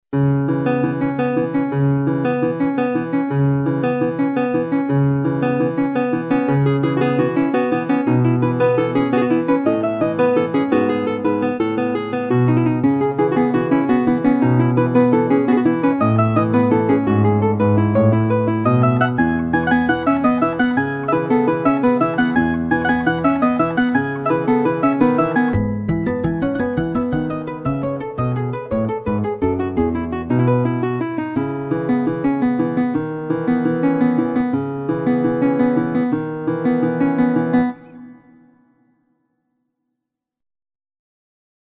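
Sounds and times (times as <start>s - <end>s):
classical guitar: 0.2s - 38.4s.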